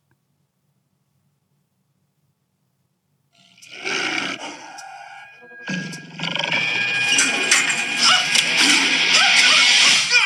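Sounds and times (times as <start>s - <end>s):
tiger roaring: 3.5s - 10.1s.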